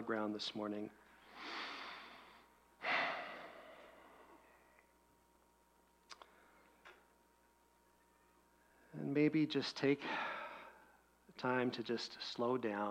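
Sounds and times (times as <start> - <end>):
speech: 0.0 - 1.0, 9.0 - 10.3, 11.4 - 12.8
slow deep human breathing: 1.2 - 4.9, 10.0 - 11.0.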